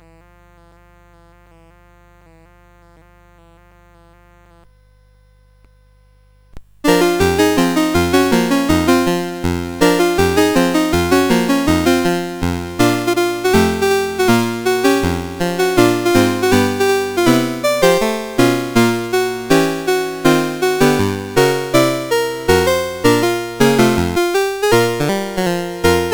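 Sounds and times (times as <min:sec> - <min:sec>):
music: 0:06.9 - 0:26.1.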